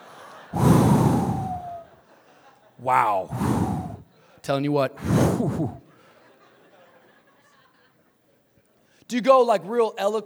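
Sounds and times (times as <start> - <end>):
person imitating exaggerated heavy breathing with a rasping exhale: 0.6 - 1.9, 2.8 - 4.1, 5.0 - 5.9
speech: 2.8 - 3.7, 4.5 - 5.8, 9.1 - 10.2.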